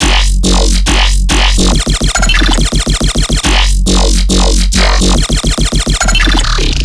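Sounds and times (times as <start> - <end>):
riddim bass loop in F sharp at 140 BPM: 0.0 - 6.8.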